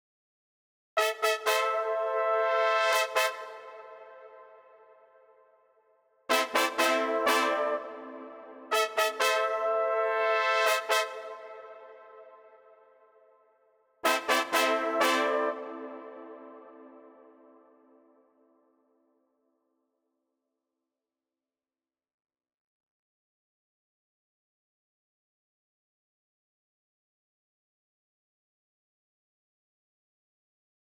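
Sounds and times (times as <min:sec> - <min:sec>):
brass trap melody in A minor: 0:01.0 - 0:04.9, 0:06.3 - 0:12.7, 0:14.0 - 0:17.5.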